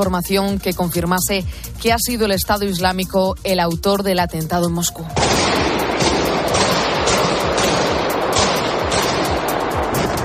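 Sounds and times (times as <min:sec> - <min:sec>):
speech: 0:00.0 - 0:05.7
automatic weapons gunfire in a crowded concert hall at a shopping centre: 0:05.2 - 0:10.1.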